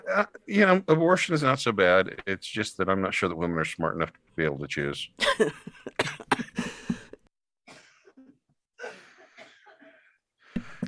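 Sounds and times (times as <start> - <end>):
speech: 0.1 - 6.2
person coughing: 6.0 - 10.2.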